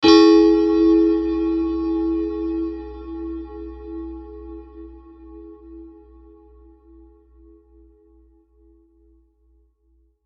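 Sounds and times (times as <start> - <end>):
bell ringing from a hit: 0.0 - 4.1.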